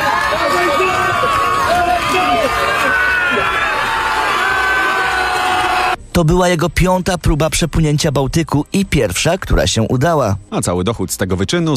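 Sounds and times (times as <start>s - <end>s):
large crowd cheering and shouting on a beach: 0.0s - 6.0s
speech: 6.2s - 11.7s.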